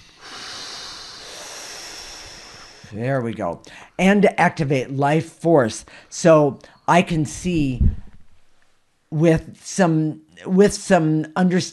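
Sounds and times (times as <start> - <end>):
deep breath drawn in: 0.0 - 3.0
speech: 2.9 - 8.0, 9.1 - 11.7.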